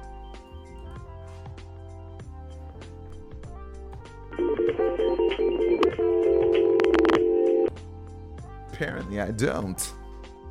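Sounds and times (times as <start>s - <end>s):
electronic telephone ring with warbling trill: 4.4s - 7.7s
speech: 4.7s - 5.6s, 8.8s - 10.0s.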